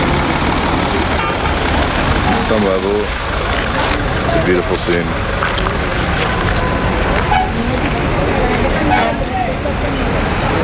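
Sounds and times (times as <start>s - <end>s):
bus carrying pilgrims engine and road rumble in busy traffic: 0.0s - 10.6s
indistinct voices murmuring: 0.0s - 10.6s
speech: 2.6s - 3.2s, 4.4s - 5.4s
horn toots: 6.6s - 7.6s, 8.8s - 9.2s.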